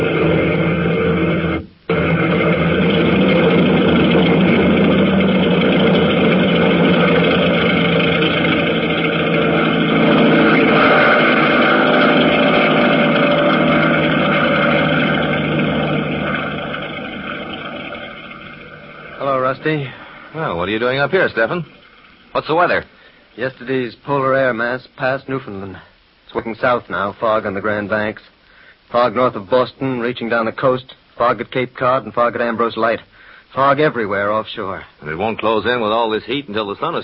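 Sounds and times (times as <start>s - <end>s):
airplane engine roaring for takeoff: 0.0s - 21.8s
speech: 20.8s - 21.8s, 22.4s - 37.0s.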